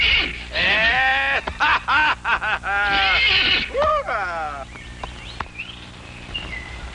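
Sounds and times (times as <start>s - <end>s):
horse whinnying loudly: 0.0s - 1.2s, 2.8s - 3.9s
laughter: 0.6s - 4.7s.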